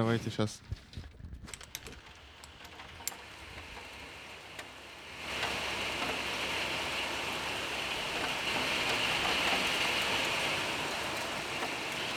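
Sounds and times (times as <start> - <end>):
speech: 0.0 - 0.9
heavy rain downpour: 4.2 - 12.1.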